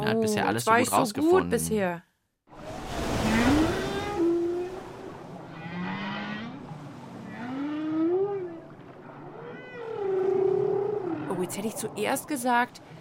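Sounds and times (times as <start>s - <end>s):
speech: 0.2s - 2.1s, 11.5s - 13.0s
water noise: 2.5s - 13.0s
whale calls: 3.0s - 13.0s.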